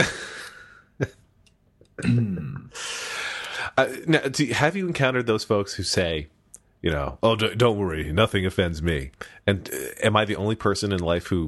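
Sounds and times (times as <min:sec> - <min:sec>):
speech: 0:01.0 - 0:01.2, 0:02.0 - 0:02.9, 0:03.8 - 0:11.4
person clearing throat: 0:02.0 - 0:02.8
person coughing: 0:02.0 - 0:02.8.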